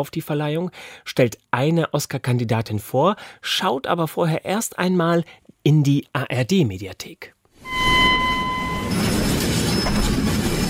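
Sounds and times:
speech: 0.0s - 7.8s
high metallic squealing from train wheels or brakes: 7.6s - 10.6s
train arriving at a station with loud continuous rumbling clatter: 8.9s - 10.6s.

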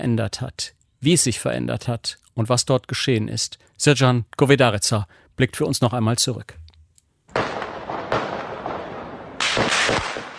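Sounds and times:
speech: 0.0s - 6.6s
loud gunshots with long rolling echo at night: 7.3s - 10.3s.

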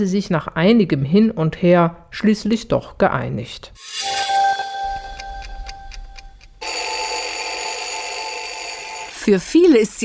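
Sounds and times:
speech: 0.0s - 4.2s, 9.3s - 10.0s
sustained bell-like ringing: 3.8s - 10.0s
clock ticking: 4.1s - 10.0s.

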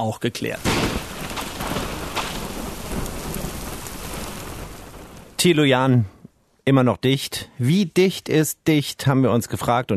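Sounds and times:
speech: 0.0s - 1.1s, 5.4s - 9.9s
thunder rumbling: 0.6s - 5.8s
heavy rain: 0.6s - 5.9s.

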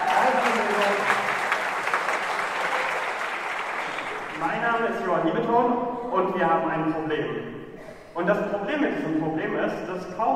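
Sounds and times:
lecture hall audience clapping: 0.0s - 5.4s
speech: 5.2s - 7.6s, 8.2s - 10.3s.

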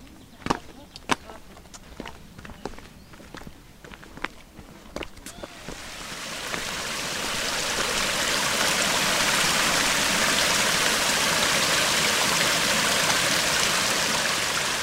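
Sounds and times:
flowing river water: 5.3s - 14.8s.

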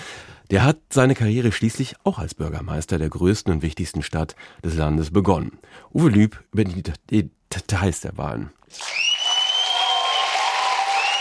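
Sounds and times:
speech: 0.5s - 9.1s
crowd clapping at an election victory celebration in Istanbul: 8.7s - 11.1s
high piercing whistles from a crowd: 8.8s - 11.1s
crowd roaring at an election victory celebration in Istanbul: 9.6s - 11.1s.

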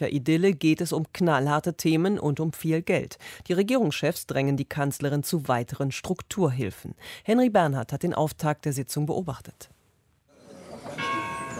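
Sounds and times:
speech: 0.0s - 9.8s
church bell striking three o'clock in the afternoon: 11.0s - 11.5s.

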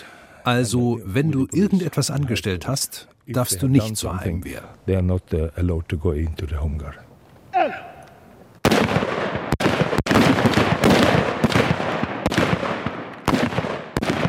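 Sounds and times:
speech: 0.4s - 7.8s
rapid rifle gunshots from home guard shooting practice: 8.6s - 14.2s.

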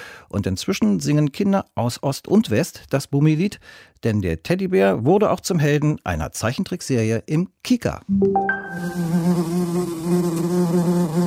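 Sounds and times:
speech: 0.3s - 11.2s
newly discovered beetle species buzzing in the Costa Rican rainforest: 8.9s - 11.2s.

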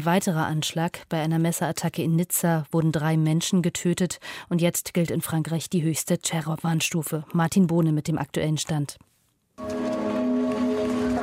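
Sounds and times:
speech: 0.0s - 9.9s
church bells ringing across France in memory of attack victims: 9.6s - 11.2s.

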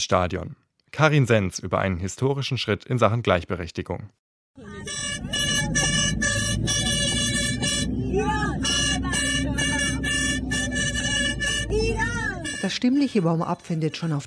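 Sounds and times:
speech: 0.0s - 5.5s, 12.7s - 14.2s
minibus engine rumble: 4.6s - 14.2s
plastic horns blown by women fans inside a minibus: 4.6s - 14.2s.

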